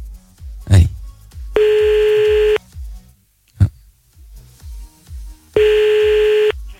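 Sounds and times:
faint music: 0.0s - 6.7s
phone line ringback tones during a call placed again after being cut off: 1.6s - 2.6s, 5.6s - 6.6s.

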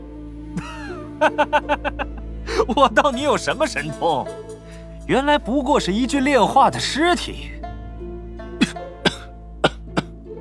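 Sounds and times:
laughter: 0.6s - 3.8s
speech: 0.6s - 4.5s, 5.1s - 7.6s
breathy throat sounds: 8.6s - 10.2s
low hoarse coughs: 8.6s - 10.2s.

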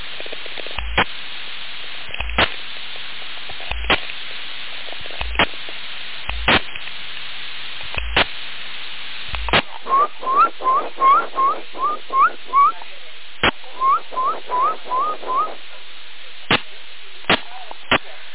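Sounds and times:
sharp CB radio clicks: 0.0s - 1.2s, 2.0s - 8.4s, 9.3s - 18.3s
whistling over CB radio: 9.6s - 12.8s, 13.4s - 15.8s.

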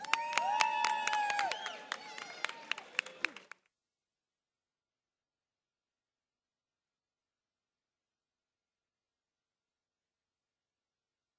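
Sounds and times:
audience applause at an anniversary celebration: 0.0s - 3.6s.

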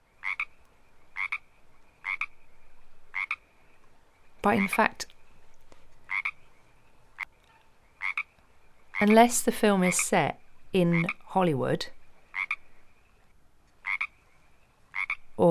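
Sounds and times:
Pacific tree frog giving two-part ribbit croaks: 0.2s - 3.4s, 6.1s - 6.4s, 7.2s - 9.2s, 10.0s - 13.1s, 13.8s - 14.2s, 14.9s - 15.4s
speech: 4.4s - 5.1s, 9.0s - 12.0s.

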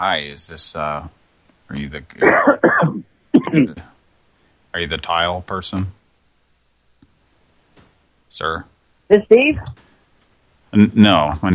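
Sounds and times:
speech: 0.0s - 3.9s, 4.7s - 6.0s, 8.3s - 9.8s, 10.7s - 11.5s
person coughing and clearing their throat while leaving a phone message: 2.2s - 3.8s.

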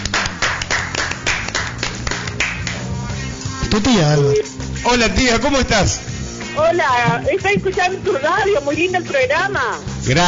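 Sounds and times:
studio audience applause: 0.0s - 2.8s
speech: 3.8s - 10.2s.

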